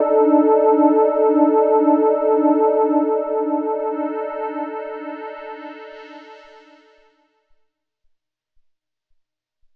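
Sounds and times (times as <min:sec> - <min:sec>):
drum and bass synth pads: 0:00.0 - 0:06.8.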